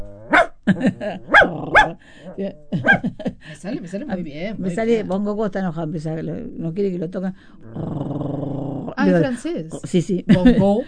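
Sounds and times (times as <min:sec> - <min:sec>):
person imitating wheezy asthmatic dog barking: 0:00.0 - 0:03.0
laughter: 0:00.7 - 0:01.4, 0:02.1 - 0:04.9, 0:10.3 - 0:10.8
speech: 0:00.7 - 0:10.8.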